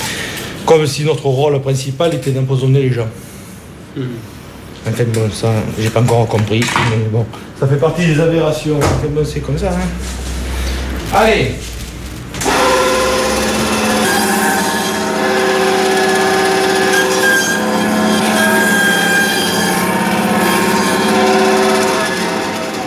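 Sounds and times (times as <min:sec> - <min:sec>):
speech: 0:00.7 - 0:03.3, 0:04.0 - 0:10.3, 0:11.1 - 0:11.7
power saw cutting through a veal foreshank bone: 0:12.3 - 0:22.8.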